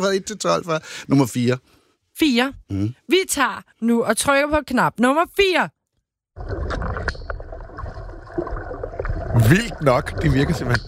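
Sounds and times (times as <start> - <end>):
speech: 0.0 - 5.8, 6.4 - 6.9, 9.4 - 10.8
water sloshing and gurgling: 6.4 - 10.8.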